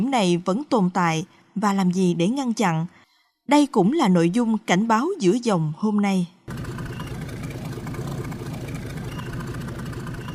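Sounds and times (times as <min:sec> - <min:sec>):
speech: 0:00.0 - 0:06.7
small passenger ferry engine throbbing crossing the Ô Môn River in Cần Thơ, Vietnam: 0:06.5 - 0:10.3.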